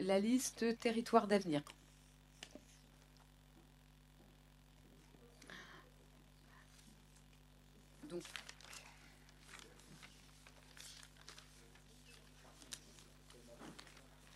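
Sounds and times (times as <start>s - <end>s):
speech: 0.0s - 1.8s, 8.1s - 8.5s
steady low hum: 0.0s - 14.3s
paper rustling and crinkling as papers are passed around: 8.1s - 14.3s.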